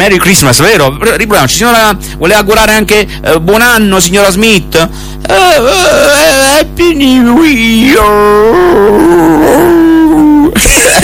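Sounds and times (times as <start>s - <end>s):
speech: 0.0s - 9.9s, 10.5s - 11.0s
dog howling like a wolfdog: 8.4s - 10.5s
laughter: 10.6s - 11.0s.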